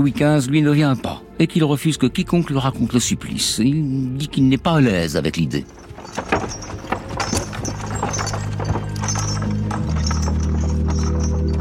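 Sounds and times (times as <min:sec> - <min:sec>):
speech: 0:00.0 - 0:06.8
horse-drawn cart rolling with low rumble: 0:05.3 - 0:11.5
horse hooves clopping: 0:05.4 - 0:11.5.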